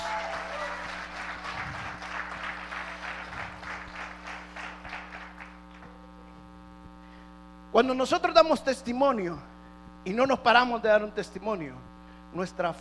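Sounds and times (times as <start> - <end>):
congregation applauding: 0.0 - 6.0
low steady hum: 0.0 - 12.7
speech: 7.8 - 12.7.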